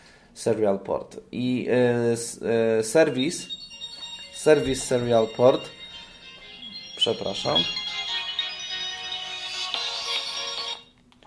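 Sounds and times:
speech: 0.4 - 3.6, 4.4 - 5.8, 7.0 - 7.8
mobile phone ringing with an electronic melody: 2.9 - 11.0.

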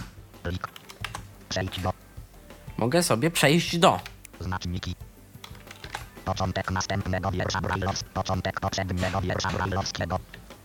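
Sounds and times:
speech: 0.4 - 0.8, 1.5 - 2.0, 2.8 - 5.1, 6.3 - 10.4
typing on a PC keyboard: 0.5 - 1.9, 5.4 - 10.4.

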